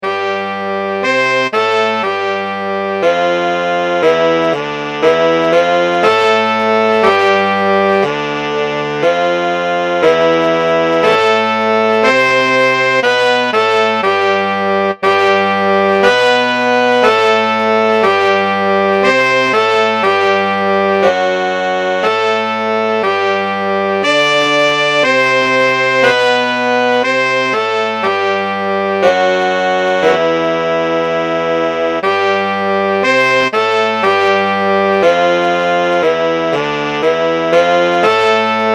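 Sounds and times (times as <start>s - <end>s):
horns playing a hymn: 0.0s - 38.7s.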